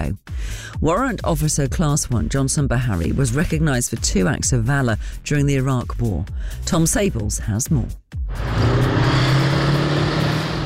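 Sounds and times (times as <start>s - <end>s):
speech: 0.0s - 8.8s
old Warrior armoured vehicle engine driving laps around an arena in Dorset: 8.3s - 10.6s.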